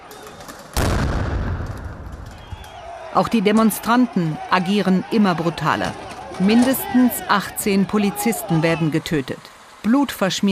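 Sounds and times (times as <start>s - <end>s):
low outdoor noise: 0.0s - 10.4s
loud gunshot with long rumbling echo outdoors: 0.8s - 2.7s
speech: 3.2s - 10.4s.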